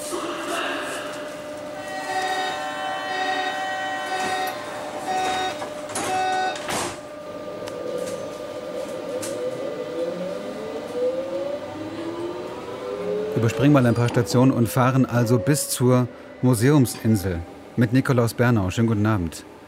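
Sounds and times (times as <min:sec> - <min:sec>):
underground subway train running: 0:00.0 - 0:19.6
subway train electric motor whine as it picks up speed: 0:01.1 - 0:17.8
short chimes or beeps: 0:02.0 - 0:06.6
speech: 0:13.4 - 0:19.5.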